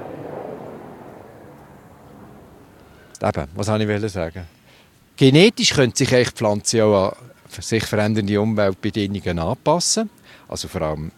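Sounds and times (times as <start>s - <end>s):
helicopter flying overhead: 0.0s - 3.2s
speech: 3.2s - 4.6s, 5.2s - 11.1s.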